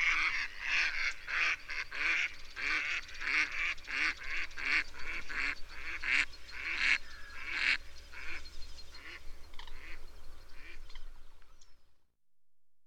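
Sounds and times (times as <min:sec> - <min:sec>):
mallard quacking in loud nasal bursts: 0:00.0 - 0:08.4, 0:09.0 - 0:10.0.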